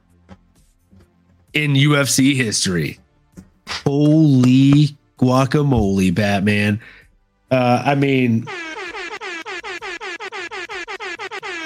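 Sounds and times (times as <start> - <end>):
speech: 1.5 - 3.0, 4.0 - 8.6
blaring brassy air horn sound effect: 8.5 - 11.6.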